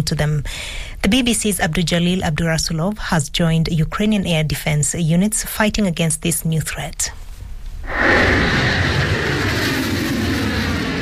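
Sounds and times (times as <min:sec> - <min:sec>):
speech: 0:00.0 - 0:07.2
missile launching into the sky with a loud roar: 0:07.8 - 0:11.0.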